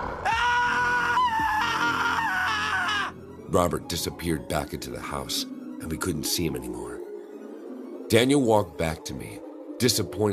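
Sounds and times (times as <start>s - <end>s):
man screaming at the top of lungs: 0.0s - 3.2s
speech: 3.5s - 7.0s, 8.1s - 10.3s.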